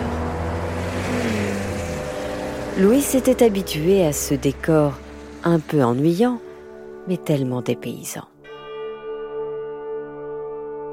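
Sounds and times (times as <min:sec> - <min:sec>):
cars and trucks driving on a long straight desert road: 0:00.0 - 0:07.1
speech: 0:02.8 - 0:06.5, 0:07.1 - 0:08.3.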